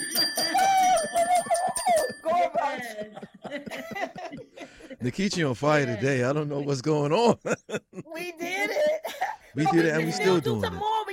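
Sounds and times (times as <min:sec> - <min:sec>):
bright bell-like donation chime ringing: 0:00.0 - 0:02.8
laughter: 0:00.4 - 0:10.8
speech: 0:05.0 - 0:08.7, 0:09.6 - 0:11.0.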